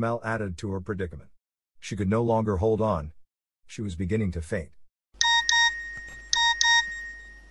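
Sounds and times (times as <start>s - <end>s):
speech: 0.0s - 4.8s
mobile phone message alert tone beeps: 5.2s - 7.4s.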